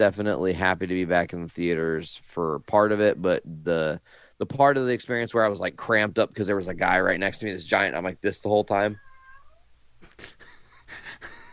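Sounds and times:
speech: 0:00.0 - 0:09.0
cat meowing: 0:08.9 - 0:09.7.

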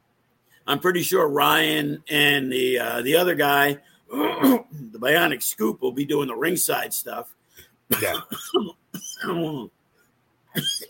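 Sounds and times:
speech: 0:00.7 - 0:09.8, 0:10.6 - 0:10.8
man coughing and clearing throat: 0:04.1 - 0:04.9, 0:07.9 - 0:09.7, 0:10.5 - 0:10.8.

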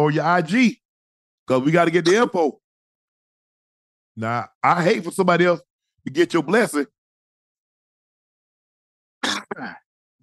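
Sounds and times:
speech: 0:00.0 - 0:00.8, 0:01.5 - 0:02.6, 0:04.2 - 0:07.0, 0:09.5 - 0:09.8
sneeze: 0:09.2 - 0:09.8.

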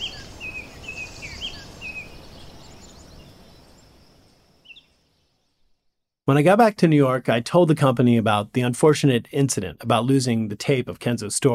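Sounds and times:
distant leaves rustling: 0:00.0 - 0:05.1
faint bird chirps and high twittering calls: 0:00.0 - 0:05.5
speech: 0:06.3 - 0:11.5.

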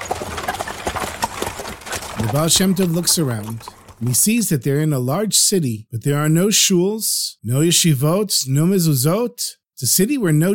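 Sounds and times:
hooves of horses pulling a wagon clip-clopping and slowing down: 0:00.0 - 0:04.2
speech: 0:02.2 - 0:10.5.

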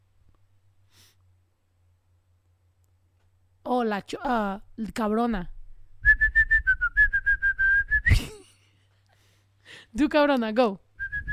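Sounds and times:
speech: 0:03.8 - 0:05.6, 0:10.0 - 0:10.8
person whistling a quick bouncy tune: 0:06.0 - 0:08.3, 0:11.0 - 0:11.3.

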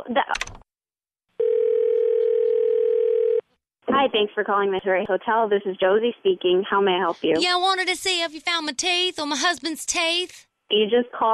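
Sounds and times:
speech: 0:00.0 - 0:00.5, 0:04.0 - 0:11.3
telephone dial tone: 0:01.4 - 0:03.5.

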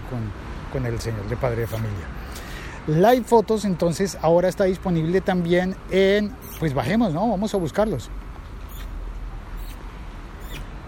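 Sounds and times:
speech: 0:00.1 - 0:08.2
high squeaky mouth noises made by a person calling a dog: 0:01.6 - 0:02.4, 0:06.3 - 0:06.8, 0:08.5 - 0:10.8.

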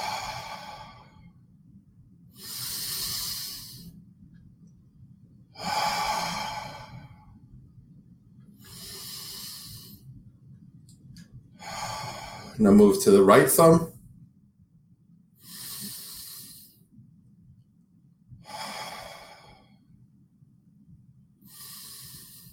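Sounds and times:
deep breathing in through the nose and out through the mouth: 0:00.0 - 0:01.4, 0:02.3 - 0:04.0, 0:05.6 - 0:07.5, 0:08.6 - 0:10.2, 0:11.5 - 0:13.8, 0:15.4 - 0:16.9, 0:18.4 - 0:20.0, 0:21.4 - 0:22.5
faint low hum: 0:00.0 - 0:22.5
speech: 0:12.6 - 0:13.9.

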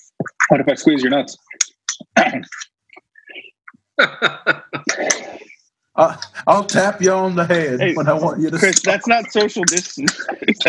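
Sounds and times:
speech: 0:00.5 - 0:01.6, 0:04.0 - 0:04.6, 0:06.0 - 0:10.6
person coughing exaggeratedly: 0:04.0 - 0:05.4
laughter: 0:04.0 - 0:10.6.

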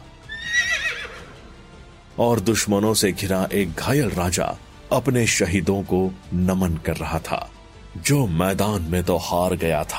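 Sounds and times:
horse whinnying: 0:00.2 - 0:01.5
speech: 0:02.2 - 0:09.9.

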